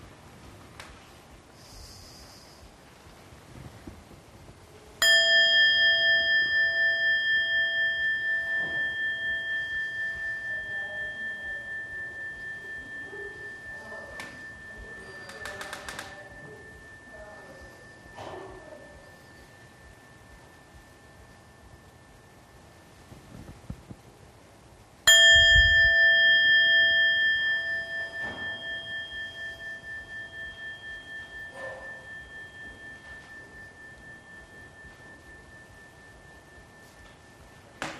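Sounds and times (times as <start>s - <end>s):
single bell struck and ringing: 5.0s - 23.2s, 25.1s - 37.9s.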